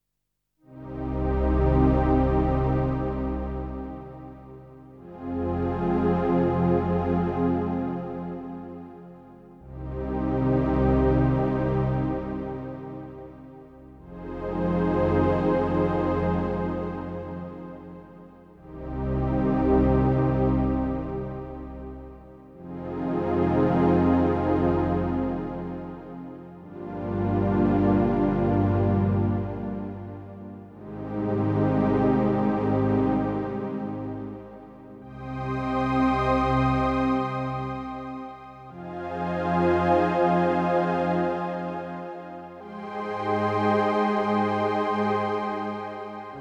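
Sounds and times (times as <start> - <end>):
Roland System8 synthesizer: 0.7 - 46.3.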